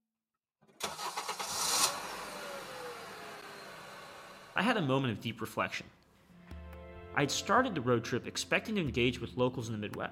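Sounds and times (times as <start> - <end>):
car engine cranking and starting: 0.8 - 4.6
speech: 4.6 - 6.0, 7.2 - 10.1.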